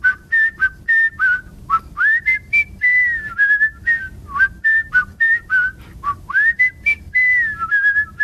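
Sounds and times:
person whistling a melody with double-tone technique: 0.0s - 8.2s
breaths: 5.8s - 6.0s.

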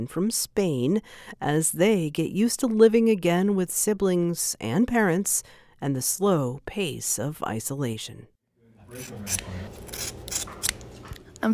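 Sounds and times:
speech: 0.0s - 8.3s, 8.9s - 10.6s
scissors snipping through a dog's hair: 9.0s - 11.2s.

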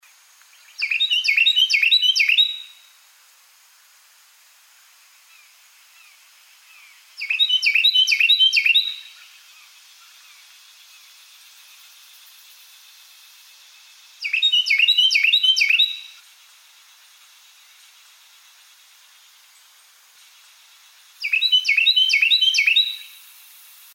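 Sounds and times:
Carolina wren singing: 0.5s - 2.8s, 5.4s - 11.1s, 14.2s - 16.3s, 20.2s - 23.3s.

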